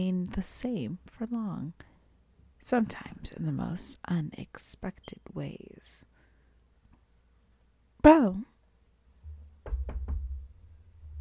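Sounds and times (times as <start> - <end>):
speech: 0.0 - 1.9, 2.6 - 6.1, 8.0 - 8.5
firm knocking on a door: 9.3 - 10.6.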